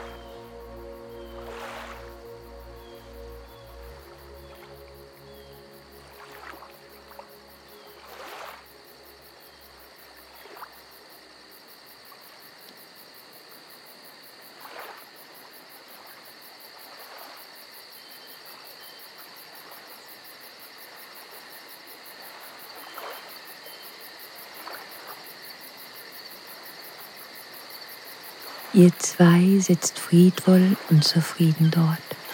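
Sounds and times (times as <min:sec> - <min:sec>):
quiet hiss of ambient noise: 0:00.0 - 0:11.5, 0:28.8 - 0:32.3
crickets chirping softly: 0:00.0 - 0:32.3
speech: 0:28.8 - 0:32.1.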